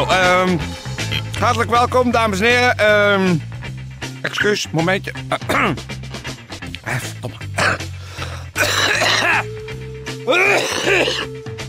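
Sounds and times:
speech: 0:00.0 - 0:03.5, 0:04.2 - 0:06.0, 0:06.9 - 0:07.9, 0:10.3 - 0:11.4
person clearing throat: 0:06.8 - 0:07.9, 0:08.6 - 0:09.5, 0:10.3 - 0:11.4
person coughing: 0:06.8 - 0:07.9, 0:08.6 - 0:09.5, 0:10.3 - 0:11.4.

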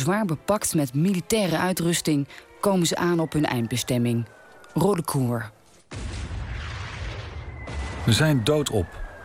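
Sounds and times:
speech: 0:00.0 - 0:06.1, 0:08.0 - 0:09.0
artillery cannon fire rumble: 0:05.9 - 0:08.5.

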